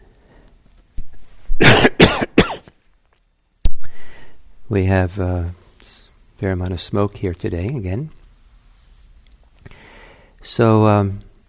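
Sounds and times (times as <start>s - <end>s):
harsh coughs: 1.6s - 2.7s
speech: 4.7s - 5.6s, 6.4s - 8.2s, 10.5s - 11.3s.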